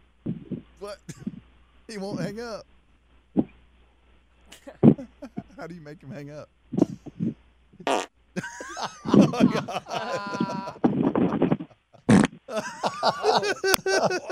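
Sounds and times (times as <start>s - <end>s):
speech: 0.3s - 1.3s, 1.9s - 2.8s, 5.0s - 7.3s, 8.8s - 10.6s, 12.6s - 14.3s
laughter: 4.5s - 5.9s, 8.4s - 11.7s, 12.5s - 14.3s
fart sound effects played by a caller over a phone line: 6.8s - 8.1s, 10.5s - 12.5s
person exclaiming: 9.1s - 10.8s, 12.5s - 14.3s.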